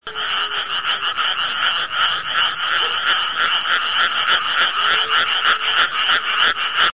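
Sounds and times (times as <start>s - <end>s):
frogs croaking in a dense chorus of raspy pulses: 0.0s - 6.9s.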